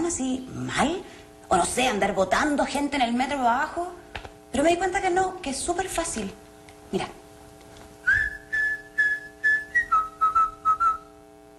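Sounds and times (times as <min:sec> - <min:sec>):
speech: 0:00.1 - 0:07.2
person whistling a tune: 0:08.0 - 0:11.1.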